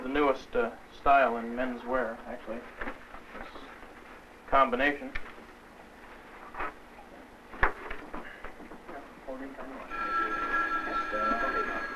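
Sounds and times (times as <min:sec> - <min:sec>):
speech: 0:00.1 - 0:03.5, 0:04.5 - 0:05.3, 0:09.3 - 0:10.0
telephone ringing with an electronic trill: 0:09.9 - 0:11.9.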